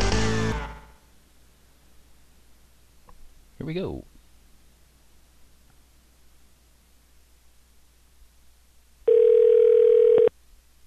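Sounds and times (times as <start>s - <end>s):
speech: 3.6s - 4.1s
telephone dial tone while placing a call to a dental office line: 9.1s - 10.3s.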